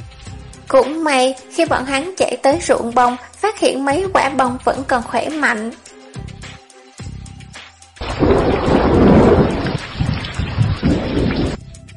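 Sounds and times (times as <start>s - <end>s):
speech: 0.7s - 5.9s
heavy thunder rumbling overhead in a rainstorm: 8.0s - 11.6s
steady rain: 8.0s - 11.6s.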